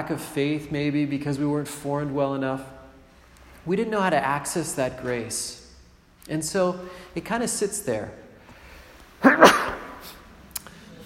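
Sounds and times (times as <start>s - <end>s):
speech: 0.0s - 2.8s, 3.6s - 5.6s, 6.3s - 8.2s
faint sniff: 8.6s - 11.0s
person sneezing caused by incense: 9.2s - 10.3s.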